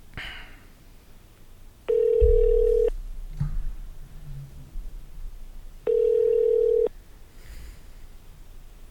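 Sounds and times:
telephone ringback tone while a call is transferred: 1.9 - 2.9, 5.9 - 6.9
faint low rumble: 1.9 - 8.8.

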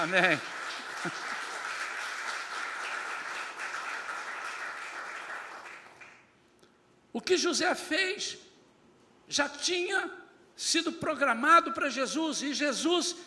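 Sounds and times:
speech: 0.0 - 1.4, 7.1 - 8.4, 9.3 - 13.2
crowd applauding: 0.0 - 6.3.

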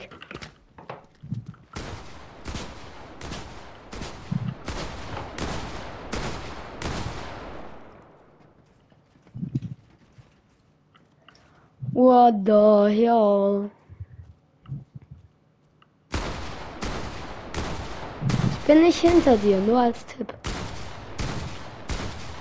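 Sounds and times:
video game gunfire: 1.7 - 8.4, 16.1 - 22.3
speech: 12.0 - 13.8, 18.7 - 20.3.

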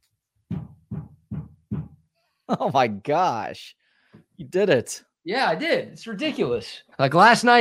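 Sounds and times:
heavy thumps of a stick banging against a ceiling: 0.5 - 2.0
speech: 2.5 - 3.8, 4.4 - 7.5.

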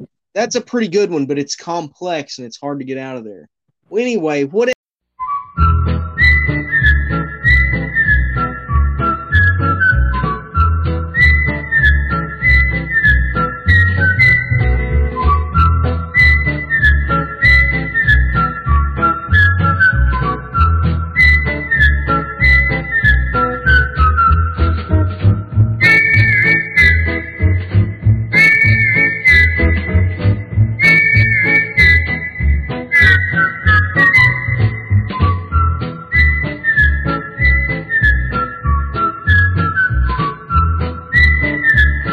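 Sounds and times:
speech: 0.4 - 4.8
instrumental backing with low pulsing bass line: 5.2 - 42.1
whistled theme song melody: 5.2 - 42.1.

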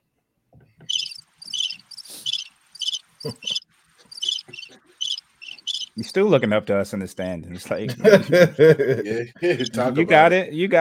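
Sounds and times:
crickets chirping in bright pulsing trills: 0.9 - 6.0
laughter: 3.2 - 3.6, 7.6 - 10.3
speech: 3.2 - 3.6, 6.0 - 10.7.

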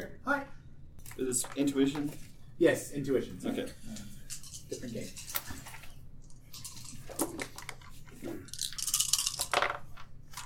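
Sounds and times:
speech: 1.2 - 5.3
dice rolling across a table: 8.4 - 10.4.

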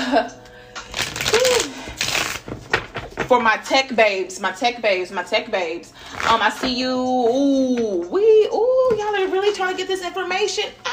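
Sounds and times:
speech: 0.1 - 0.4, 3.3 - 10.9
deck of cards being riffle-shuffled: 0.8 - 2.9.

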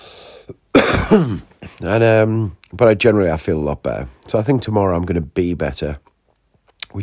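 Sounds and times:
person clearing throat: 0.5 - 1.8
person coughing: 0.5 - 2.0
speech: 0.5 - 6.0.

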